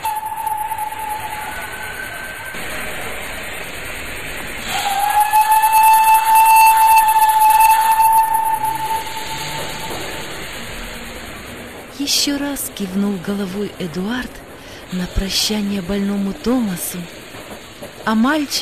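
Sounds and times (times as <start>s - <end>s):
high sustained steam locomotive whistle: 0.0s - 13.2s
steam locomotive hissing as it departs: 0.0s - 18.6s
speech: 12.6s - 17.2s, 18.1s - 18.6s.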